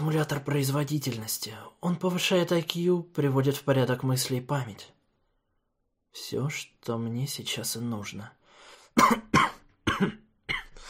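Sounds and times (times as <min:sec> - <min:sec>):
speech: 0:00.0 - 0:05.0, 0:06.1 - 0:08.4, 0:09.0 - 0:10.2
woman coughing in dry harsh bursts: 0:09.0 - 0:10.8.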